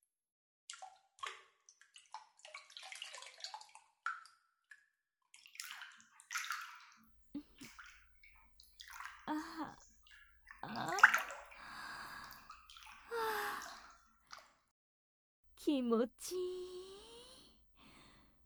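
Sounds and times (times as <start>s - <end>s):
water dripping in an open-air hot spring bath: 0.7s - 4.4s, 5.4s - 14.4s
water splashing and sloshing in an open-air hot spring bath: 2.0s - 3.8s, 5.4s - 8.0s, 8.6s - 14.4s
speech: 15.6s - 16.5s.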